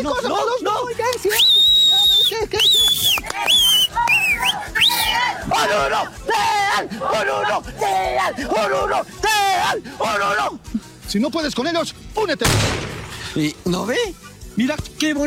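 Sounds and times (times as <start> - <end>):
speech: 0.0 - 1.6, 6.8 - 15.2
loud shrill whistling: 1.3 - 5.3
noisy crowd yelling and chanting: 1.9 - 10.6.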